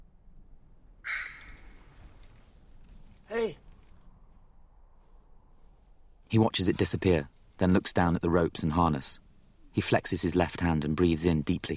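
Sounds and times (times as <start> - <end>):
large raven cawing in flight over a crevice between cliffs: 1.0 - 1.9
speech: 3.4 - 3.6, 6.3 - 9.2, 9.8 - 11.7.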